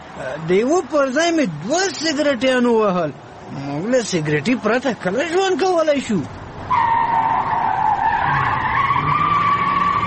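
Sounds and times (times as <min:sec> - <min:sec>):
speech: 0:00.2 - 0:06.8
car tires squealing in a long skid from a car driven too fast: 0:06.7 - 0:10.0.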